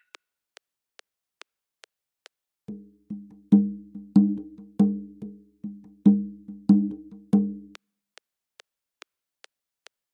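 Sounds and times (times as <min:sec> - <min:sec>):
Adowa drum rhythm: 0:02.7 - 0:07.8.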